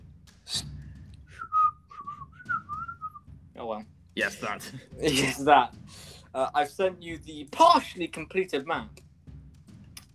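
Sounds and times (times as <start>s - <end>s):
person whistling wavering notes: 1.3s - 3.2s
speech: 3.6s - 9.0s.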